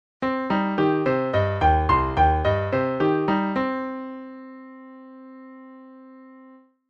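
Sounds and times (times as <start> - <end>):
arpeggio: 0.8 - 3.8.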